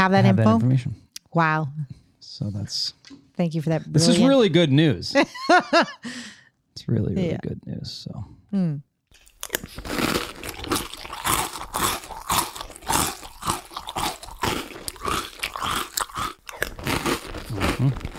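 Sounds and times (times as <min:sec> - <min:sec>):
speech: 0:00.0 - 0:08.9, 0:09.5 - 0:10.2, 0:17.8 - 0:18.1
chewing something hard and crisp like a raw carrot: 0:09.1 - 0:18.1.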